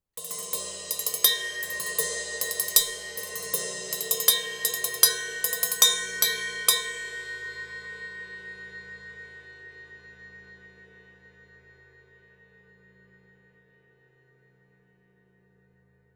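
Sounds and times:
cymbal: 0.2s - 14.2s.

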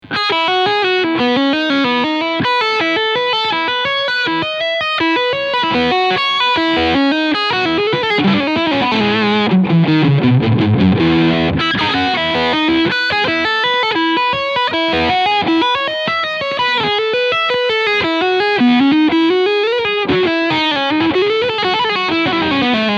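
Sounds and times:
travel electric guitar with crunch sound on bridge and middle pickup: 0.0s - 22.9s.

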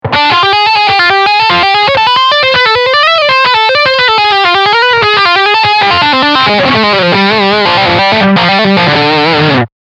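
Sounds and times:
electric guitar lead line on humbucker pickup: 0.0s - 9.7s.

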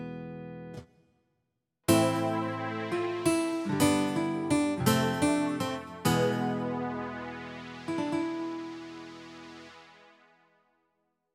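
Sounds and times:
Casio CT-S1000V keyboard guitar sounds: 1.9s - 10.4s.

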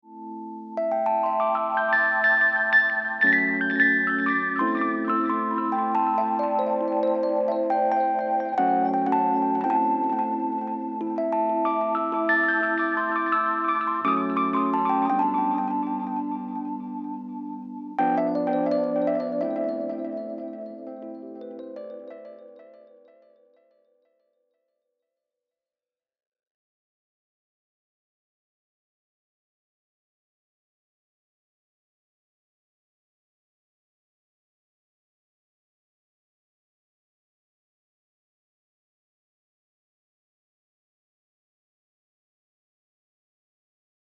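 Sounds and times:
electric piano with tape echo: 0.6s - 23.2s.

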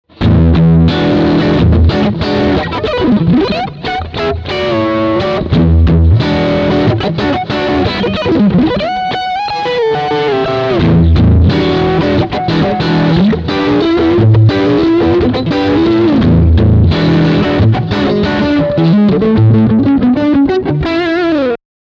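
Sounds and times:
crunchy single-coil electric guitar riff: 0.0s - 21.6s.

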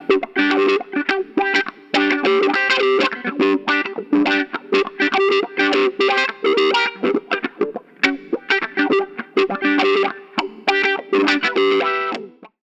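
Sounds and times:
guitar through a Zener limiter compressor: 0.0s - 12.6s.

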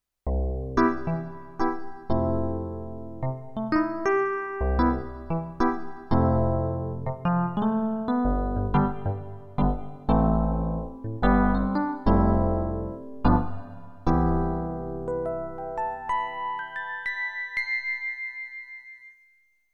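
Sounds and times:
electric piano: 0.3s - 18.3s.

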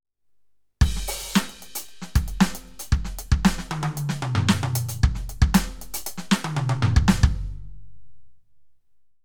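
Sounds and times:
Roland TD07 electronic drum resonance: 0.8s - 7.6s.

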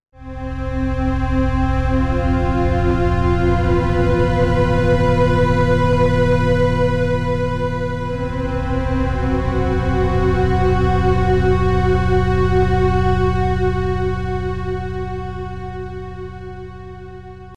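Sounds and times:
alien strings: 0.8s - 16.0s.

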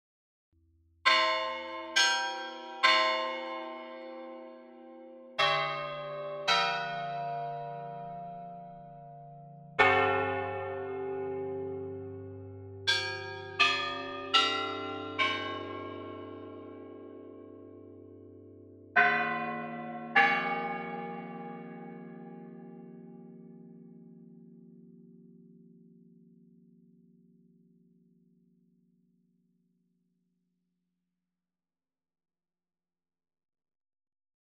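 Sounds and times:
church bells ringing: 1.1s - 24.0s.

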